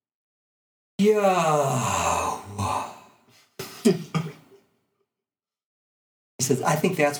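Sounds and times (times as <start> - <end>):
speech: 1.0 - 2.1, 6.4 - 7.1
big man with a deep voice imitating a long exhaled breath: 1.2 - 3.8.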